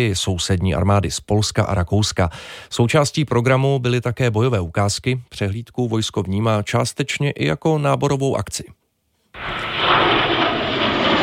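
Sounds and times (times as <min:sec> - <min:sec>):
speech: 0:00.0 - 0:08.8
JAS-39 Gripen fighter jets roaring overhead at a military display: 0:09.4 - 0:11.2.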